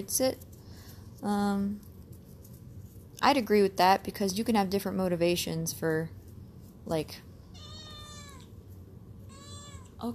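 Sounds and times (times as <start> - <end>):
speech: 0.0 - 0.5, 1.2 - 1.9, 3.2 - 6.2, 6.8 - 7.3
low hum: 0.0 - 10.1
cat meowing: 7.5 - 8.6, 9.3 - 10.0.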